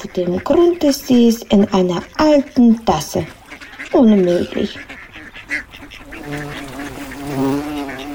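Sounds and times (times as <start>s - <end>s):
speech: 0.0s - 4.9s
large bumblebee buzzing around a person's head: 5.3s - 8.1s.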